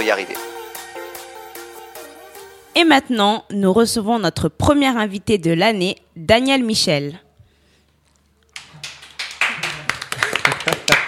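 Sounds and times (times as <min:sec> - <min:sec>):
speech: 0:00.0 - 0:00.5, 0:02.8 - 0:07.2
audience applause for arriving guest: 0:08.6 - 0:11.0.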